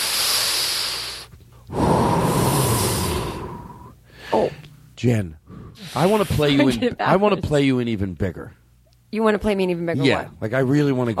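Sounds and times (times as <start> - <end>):
deep breath: 0.0 - 4.8, 5.4 - 6.4
speech: 4.4 - 11.1.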